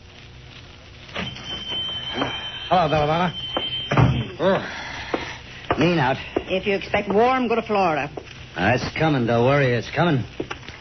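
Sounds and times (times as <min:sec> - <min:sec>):
shop door opening with a soft clatter: 0:01.1 - 0:04.4
speech: 0:02.7 - 0:03.4, 0:04.4 - 0:04.8, 0:05.8 - 0:10.4.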